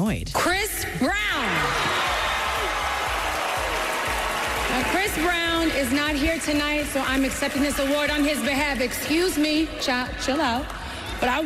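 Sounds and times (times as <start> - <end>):
speech: 0.1 - 1.6, 4.8 - 11.4
large audience booing in a big hall at an award show: 1.4 - 5.7
scattered clapping: 1.7 - 9.6.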